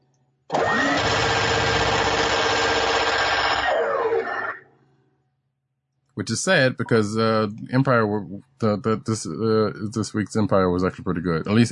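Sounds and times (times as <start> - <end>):
minigun spinning up in a video game: 0.5 - 4.3
speech: 6.2 - 11.6.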